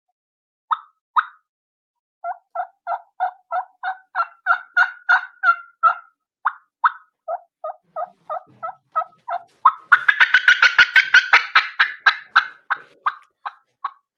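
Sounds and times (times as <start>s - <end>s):
imitated turkey hen fly-down cackle: 0.7s - 1.4s, 2.2s - 14.1s.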